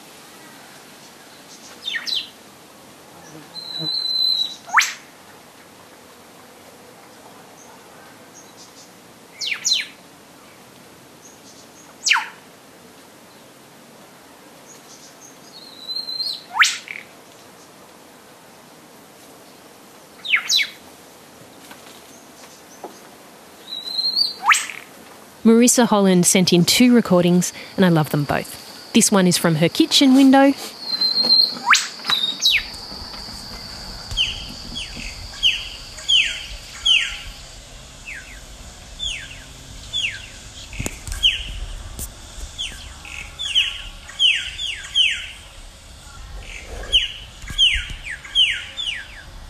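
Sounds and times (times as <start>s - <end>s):
faintly hissing bush background: 0.0s - 49.4s
whipbird calling: 24.4s - 24.8s, 31.0s - 32.8s
speech: 25.5s - 30.8s.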